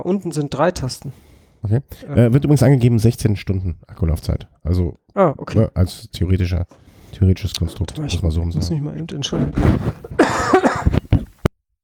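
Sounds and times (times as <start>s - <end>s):
speech: 0.0s - 10.4s
slightly unwell person coughing: 10.0s - 11.4s.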